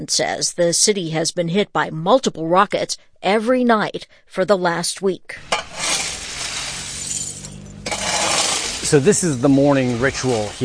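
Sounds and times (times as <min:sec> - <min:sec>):
speech: 0:00.0 - 0:05.6, 0:08.9 - 0:10.6
broken glass shards scraping and clinking: 0:05.4 - 0:10.6
broom sweeping broken glass in a city street: 0:05.4 - 0:10.6.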